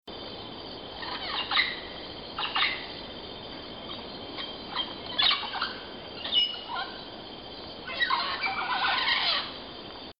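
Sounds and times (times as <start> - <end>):
parrots: 1.0 - 2.9, 3.9 - 7.0, 7.8 - 9.6.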